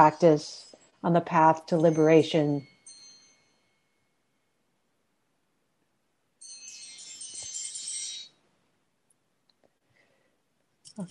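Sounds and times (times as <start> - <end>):
speech: 0.0 - 2.7
alarm bell ringing as a timer during a talk: 1.6 - 4.6, 6.4 - 8.4.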